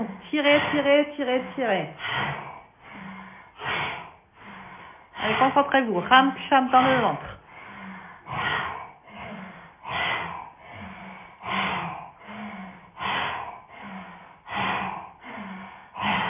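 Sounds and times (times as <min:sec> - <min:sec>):
speech: 0:00.0 - 0:02.5, 0:05.2 - 0:07.4
forceful breaths through the mouth in a yoga breathing exercise with tongue out: 0:00.0 - 0:16.2
quiet breath intakes: 0:02.0 - 0:05.7, 0:07.0 - 0:16.2.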